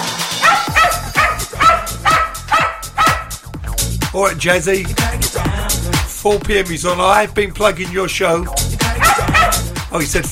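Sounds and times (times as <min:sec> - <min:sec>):
dog barking: 0:00.3 - 0:03.5, 0:08.9 - 0:09.7
speech: 0:04.2 - 0:08.6, 0:09.9 - 0:10.2.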